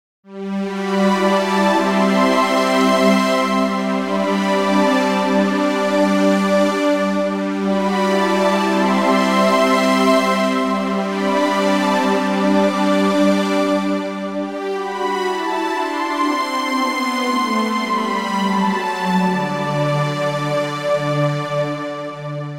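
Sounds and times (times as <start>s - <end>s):
pulse-width modulation synth strings: 0.8s - 22.5s.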